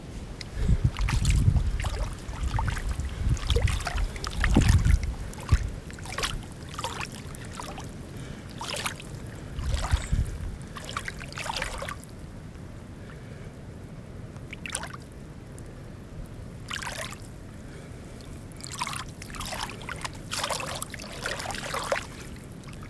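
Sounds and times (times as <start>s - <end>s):
wading through water at a beach: 0.0s - 13.4s, 14.4s - 15.1s, 16.6s - 22.8s.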